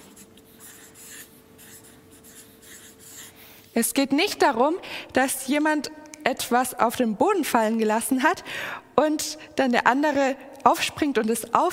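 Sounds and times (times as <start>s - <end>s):
pen handwriting on paper: 0.0s - 3.3s
speech: 3.8s - 11.7s.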